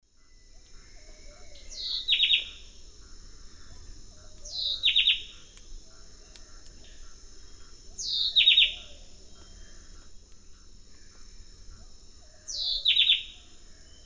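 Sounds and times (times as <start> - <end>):
high-pitched insect hum: 0.1 - 14.0
white-breasted wood wren Henicorhina leucosticta song in South American eastern lowlands: 0.2 - 14.0.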